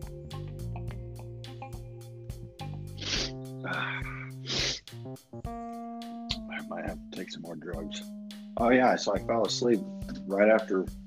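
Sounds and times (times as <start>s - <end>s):
steady music: 0.0s - 11.0s
person sneezing: 3.0s - 3.4s, 4.2s - 4.8s
speech: 7.3s - 11.0s.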